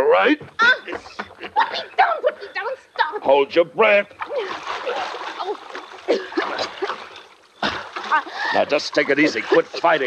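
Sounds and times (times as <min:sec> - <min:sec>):
speech: 0:00.2 - 0:04.8, 0:08.1 - 0:10.0
laughter: 0:00.6 - 0:02.6, 0:04.8 - 0:10.0
water splashing as someone wades across a ditch: 0:03.8 - 0:10.0.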